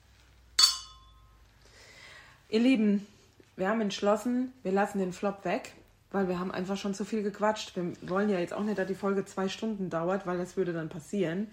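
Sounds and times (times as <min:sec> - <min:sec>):
glasses clinking in a toast: 0:00.6 - 0:01.4
speech: 0:02.5 - 0:11.5.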